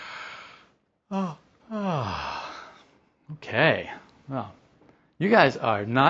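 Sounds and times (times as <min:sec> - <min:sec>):
speech: 0:01.1 - 0:02.2, 0:03.4 - 0:04.6, 0:05.2 - 0:06.0
person yawning with a drawn-out voiced yawn: 0:01.1 - 0:02.8.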